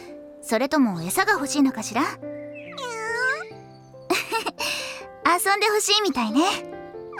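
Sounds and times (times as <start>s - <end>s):
speech: 0.5s - 2.4s, 5.3s - 7.1s
stray cat meowing: 2.7s - 3.6s.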